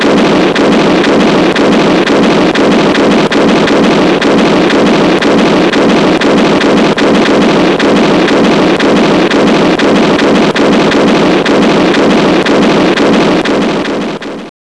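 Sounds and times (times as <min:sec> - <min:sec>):
artillery fire: 0:00.0 - 0:14.5.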